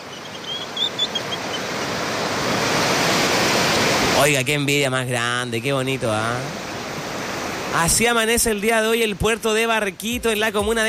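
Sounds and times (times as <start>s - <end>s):
faint high chirps: 0.0s - 1.7s
ocean waves breaking on the shore at a port: 0.0s - 10.8s
speech: 4.2s - 6.6s, 7.7s - 10.8s.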